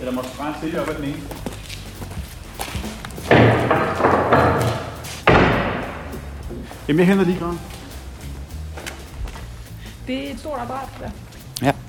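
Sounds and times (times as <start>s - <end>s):
rumbling rattling shuffle: 0.0s - 11.8s
speech: 0.1s - 1.5s, 6.6s - 7.8s, 10.1s - 11.8s
door being pushed shut: 3.2s - 6.3s.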